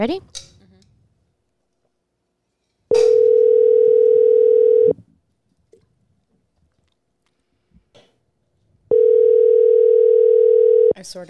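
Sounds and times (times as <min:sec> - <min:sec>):
phone ringback tone of an outgoing call: 0:03.2 - 0:05.0, 0:08.9 - 0:10.9.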